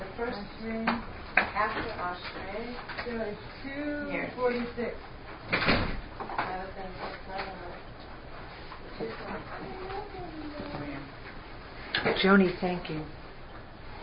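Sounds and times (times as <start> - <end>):
speech: 0.2 - 5.9, 6.5 - 7.7, 9.0 - 11.1, 12.0 - 13.2
door shutting with a solid thud: 5.5 - 6.1.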